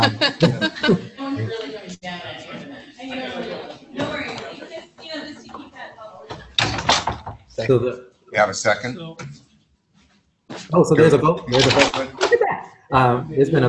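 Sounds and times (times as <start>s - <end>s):
several people chattering and laughing in a busy room: 0.0s - 6.6s, 10.7s - 13.6s
speech: 0.3s - 1.0s, 7.7s - 9.3s, 10.5s - 12.2s, 12.9s - 13.6s
door swinging shut: 6.3s - 7.5s
sharp knocks and thuds of a closing door: 6.3s - 7.5s.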